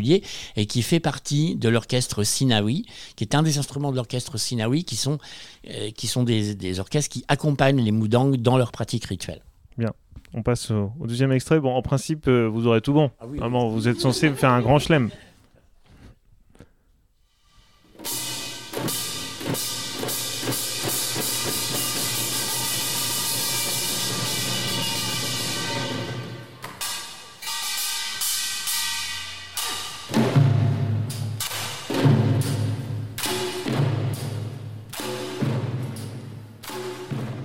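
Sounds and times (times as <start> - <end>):
speech: 0.0 - 15.3
laughter: 13.5 - 15.4
gongs and cymbals clanging in Korean nonggak percussion music: 17.6 - 37.4
heavy drum strikes in Korean nonggak percussion music: 18.0 - 37.4.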